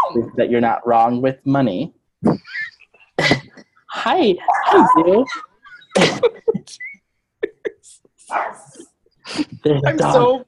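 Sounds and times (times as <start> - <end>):
dog giving short sharp barks: 0.0 - 0.2, 4.4 - 5.1, 8.3 - 8.7
speech: 0.1 - 2.6, 4.0 - 6.8, 7.8 - 10.4
laughter: 5.0 - 10.3.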